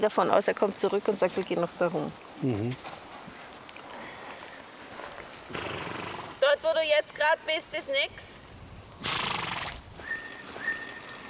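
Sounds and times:
speech: 0.0s - 3.0s, 6.8s - 8.4s
horse giving a short breathy neigh: 5.5s - 6.4s, 9.0s - 9.8s.

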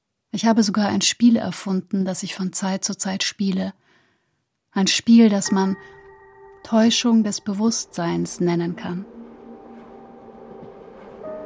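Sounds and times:
speech: 0.4s - 3.8s, 4.7s - 6.0s, 6.6s - 9.2s
faint tonal hums aboard a train: 5.5s - 11.4s
train riding along the rails through the countryside: 7.6s - 11.4s.

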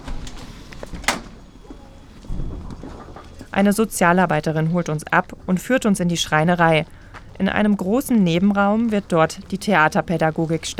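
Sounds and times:
heavy prison door metallic clunk opening into a security lock: 0.0s - 3.5s
dull tone: 0.0s - 10.7s
speech: 3.6s - 10.7s.

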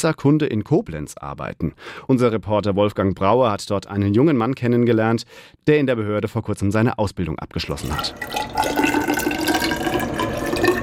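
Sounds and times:
speech: 0.0s - 9.1s
unfiltered river water sample pouring into a glass measuring cylinder in a laboratory: 7.7s - 10.8s.

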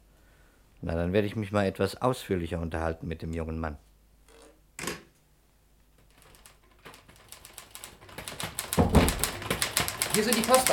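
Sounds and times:
speech: 0.8s - 3.9s, 10.2s - 10.7s
typewriter keystrokes: 6.0s - 10.7s.

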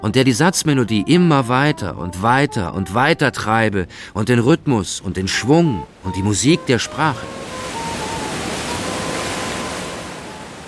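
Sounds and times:
speech: 0.0s - 7.5s
Pacific Ocean waves breaking on a deserted sandy beach along a highway: 5.4s - 10.6s.

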